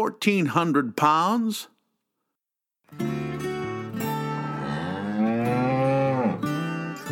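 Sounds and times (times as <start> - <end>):
speech: 0.0 - 1.7, 2.9 - 3.2
cow mooing: 4.0 - 7.1.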